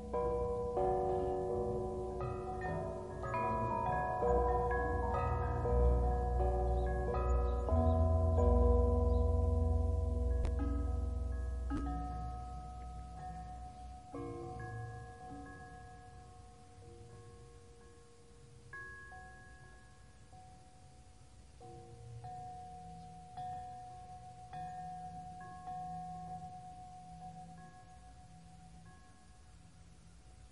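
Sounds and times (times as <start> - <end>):
deep low hum: 0.0 - 13.9
resonant bells ringing in sustained tones: 0.0 - 30.5.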